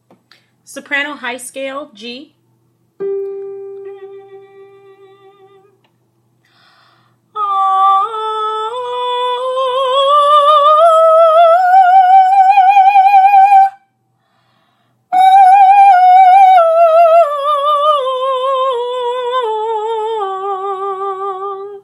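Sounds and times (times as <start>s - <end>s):
soprano singing a high scale: 3.0s - 5.8s, 7.3s - 13.8s, 15.1s - 21.8s.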